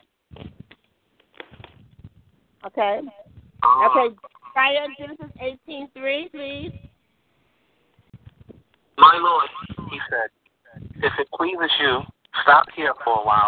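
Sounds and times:
tinny voices through a phone speakerphone: 1.8s - 7.0s, 8.2s - 13.4s
speech: 2.6s - 6.8s, 9.1s - 10.4s, 11.0s - 13.4s.

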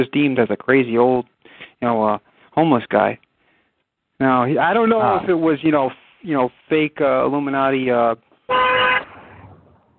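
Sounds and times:
speech: 0.0s - 3.2s, 4.2s - 8.8s
car horn honk: 8.5s - 9.4s.

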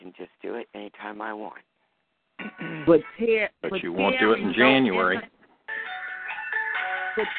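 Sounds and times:
speech: 1.0s - 1.7s, 2.6s - 5.3s, 7.2s - 7.3s
cell phone ringing with an electronic melody: 3.9s - 7.3s.

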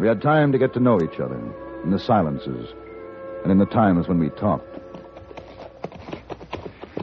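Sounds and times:
speech: 0.0s - 4.9s
horses' hooves clip-clopping at a walk as riders ride home: 4.6s - 7.0s.

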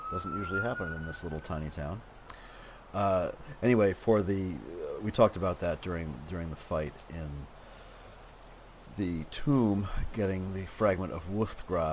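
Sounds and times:
siren wailing: 0.0s - 1.9s
speech: 0.1s - 7.6s, 9.0s - 11.9s.

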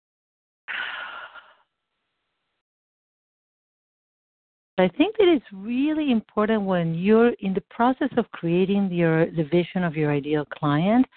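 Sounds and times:
person taking a deep breath during an emotional tapping exercise: 0.7s - 1.6s
speech: 4.8s - 11.1s.

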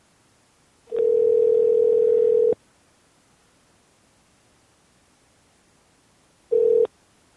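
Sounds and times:
telephone dial tone while redialing a dropped caller: 0.9s - 2.6s, 6.5s - 6.9s.

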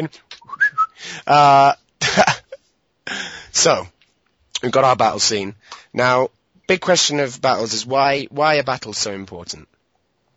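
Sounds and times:
speech: 0.0s - 0.4s, 1.0s - 2.4s, 3.6s - 4.0s, 4.6s - 9.7s
person whistling imitating birdsong: 0.4s - 1.0s.

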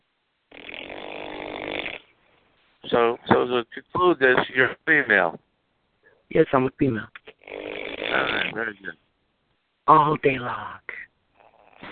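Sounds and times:
loud raspy snore: 0.5s - 2.1s, 7.4s - 8.6s, 11.4s - 11.9s
speech: 2.9s - 5.4s, 6.3s - 7.2s, 8.2s - 9.0s, 9.9s - 11.1s.

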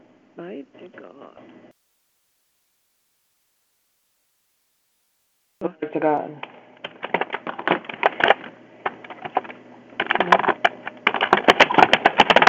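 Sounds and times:
faint low hum: 0.0s - 12.4s
speech: 0.4s - 1.7s, 5.9s - 6.5s
typing on a nearby keyboard: 6.8s - 12.4s.

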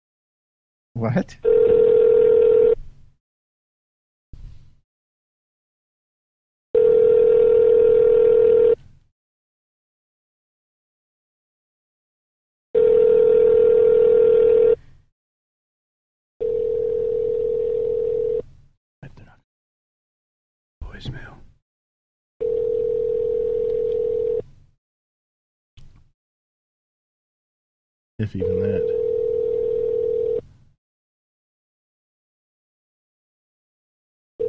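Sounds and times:
speech: 1.0s - 1.8s, 28.2s - 29.1s
telephone line tones while dialing: 1.4s - 2.8s, 6.8s - 8.8s, 12.8s - 14.8s, 16.4s - 18.4s, 22.4s - 24.4s, 28.4s - 30.4s.

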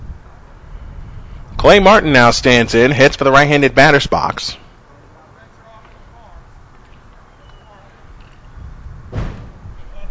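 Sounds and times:
speech: 1.6s - 4.6s
heavy door slamming shut with a deep booming thud: 9.1s - 9.7s.

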